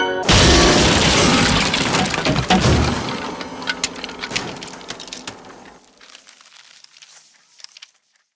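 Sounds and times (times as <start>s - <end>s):
piano smash: 0.2s - 5.8s.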